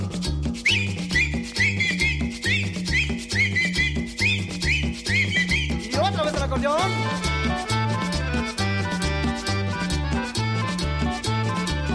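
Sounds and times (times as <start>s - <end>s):
upbeat music with a steady bass pulse: 0.0s - 11.9s
high whistled notes with quick upward slides: 0.5s - 6.6s
speech: 6.5s - 7.2s.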